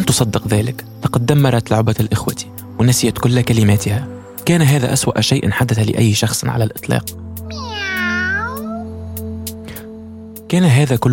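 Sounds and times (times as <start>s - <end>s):
speech: 0.1s - 7.9s, 10.5s - 11.1s
cat meowing: 7.5s - 8.9s.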